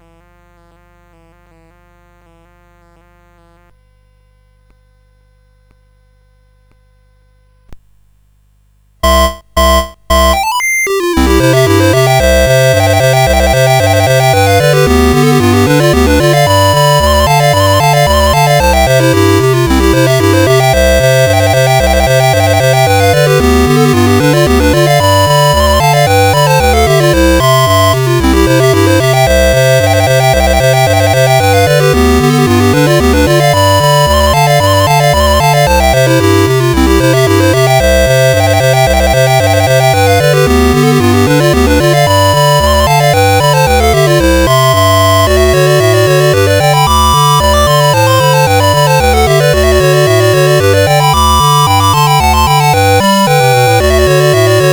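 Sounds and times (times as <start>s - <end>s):
clarinet polka tune: 9.0s - 54.7s.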